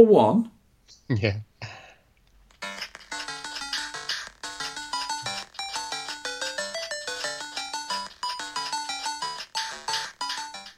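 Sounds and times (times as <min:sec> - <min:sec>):
speech: 0:00.0 - 0:01.5
chiptune-style video game melody through a small phone speaker: 0:02.6 - 0:10.7.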